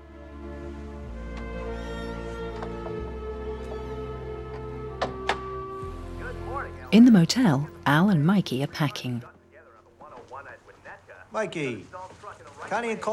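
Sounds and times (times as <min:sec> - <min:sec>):
steady droning tonal background: 0:00.0 - 0:11.4
door shutting: 0:01.4 - 0:05.6
speech: 0:06.9 - 0:09.3, 0:11.3 - 0:12.1, 0:12.7 - 0:13.1.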